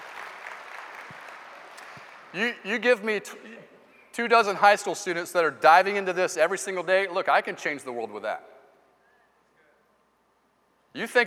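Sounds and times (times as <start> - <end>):
room full of people clapping: 0.0 - 2.4
speech: 2.3 - 8.5, 10.9 - 11.2.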